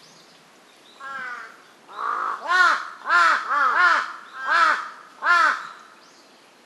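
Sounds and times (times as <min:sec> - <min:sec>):
large-billed crow giving harsh arched caws: 0:01.0 - 0:05.8.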